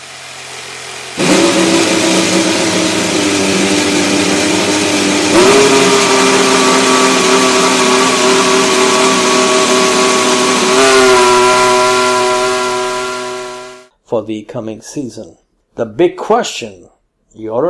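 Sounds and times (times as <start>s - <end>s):
new racing car engine revving: 0.0s - 13.9s
speech: 14.2s - 17.6s.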